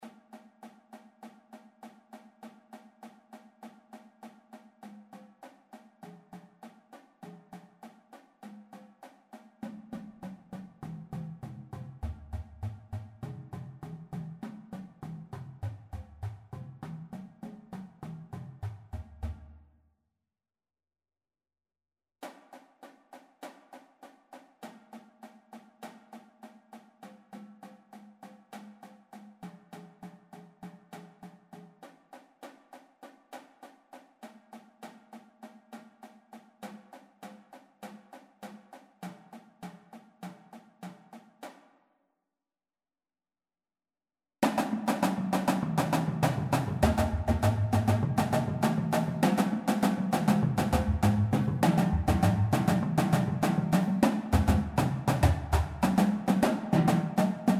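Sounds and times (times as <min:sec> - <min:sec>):
drumline playing at auditions: 0:44.5 - 0:57.5.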